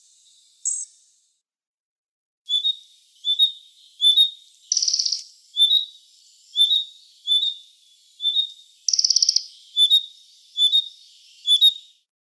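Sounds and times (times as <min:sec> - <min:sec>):
red-breasted flycatcher short high whistled notes: 0:02.5 - 0:11.9.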